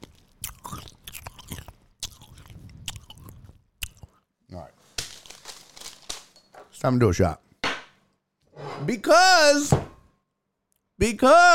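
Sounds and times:
chewing and soft crunching as someone eats: 0.0 - 4.3
quiet wet mouth sounds: 0.0 - 4.3
speech: 6.8 - 7.4, 8.8 - 9.8, 11.0 - 11.5.

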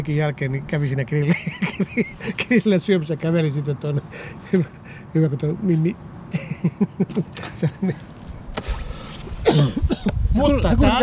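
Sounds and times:
speech: 0.0 - 8.1, 9.5 - 11.0
laughter: 1.2 - 2.7, 6.3 - 8.1
person coughing: 9.4 - 10.2.

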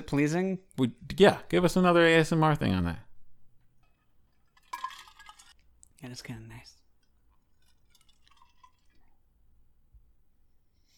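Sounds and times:
speech: 0.0 - 3.1, 6.0 - 6.8
faint liquid slosh in a coffee mug: 4.0 - 5.7, 7.0 - 9.2
ice cubes rattling and clinking in a coffee mug: 4.4 - 5.6, 7.4 - 9.1.

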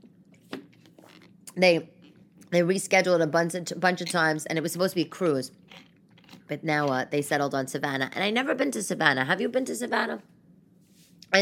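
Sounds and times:
person sipping a drink: 0.8 - 2.5
speech: 1.6 - 5.9, 6.5 - 10.3.

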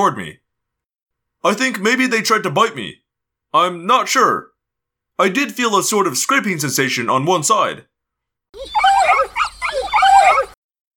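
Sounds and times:
speech: 0.0 - 0.4, 1.4 - 4.5, 5.2 - 7.9, 8.5 - 9.4
dogs yelping and whimpering: 8.6 - 10.6.

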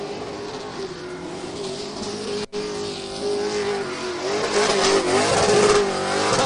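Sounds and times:
stock car engine revving during a victory burnout on a racetrack: 0.0 - 6.4.

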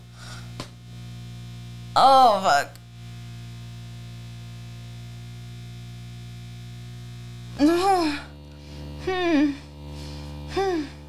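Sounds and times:
electric device buzzing with a low hum: 0.0 - 11.0
speech: 2.0 - 2.8, 7.6 - 8.2
short drawn-out vocal sounds: 7.6 - 8.3, 9.0 - 11.0.

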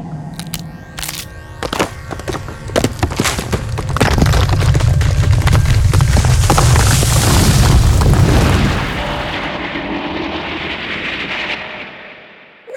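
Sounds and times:
bombs dropped from above exploding: 1.9 - 12.4.

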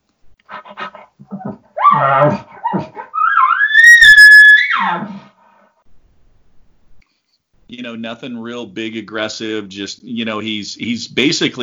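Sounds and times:
person's voice imitating a long high tonal dog whine: 1.3 - 5.1
speech: 2.0 - 2.5, 8.0 - 11.6.

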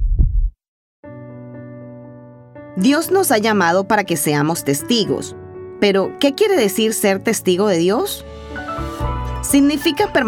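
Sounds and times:
deep heartbeat thump: 0.0 - 0.5
speech: 2.8 - 8.4, 9.4 - 10.2.

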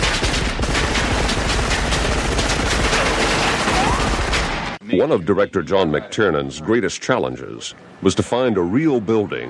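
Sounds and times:
machine gun fire in film: 0.0 - 4.8
faint shouting: 3.0 - 4.2
speech: 4.9 - 9.4.

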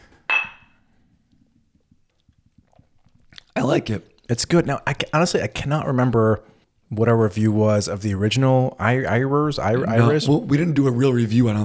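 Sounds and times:
glasses clinking in a toast: 0.3 - 0.8
speech: 3.7 - 11.6.

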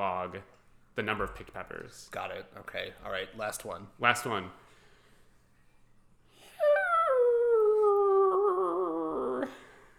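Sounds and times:
speech: 0.0 - 4.6
person's voice imitating a dog howling: 6.6 - 9.6.

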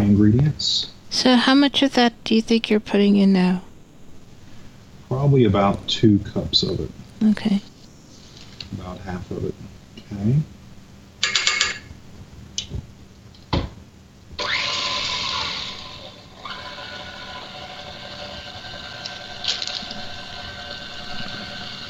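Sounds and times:
speech: 0.1 - 3.7, 5.1 - 7.7, 8.7 - 10.6
electric mixer mixing cookie dough made with flour and pumpkin: 14.4 - 21.8.

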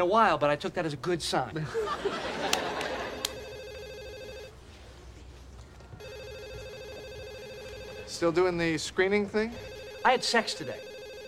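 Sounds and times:
speech: 0.0 - 2.6, 8.1 - 10.9
laughter: 1.6 - 3.4
telephone ringing: 3.0 - 4.6, 6.0 - 8.4, 9.5 - 11.2.

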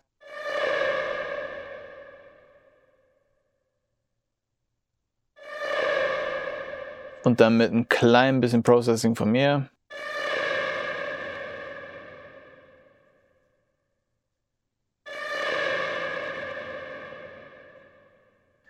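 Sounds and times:
siren-like whale sound effect in film score with sustain and tremolo: 0.0 - 3.6, 5.4 - 8.1, 9.9 - 13.8, 15.0 - 18.6
speech: 7.2 - 10.1.

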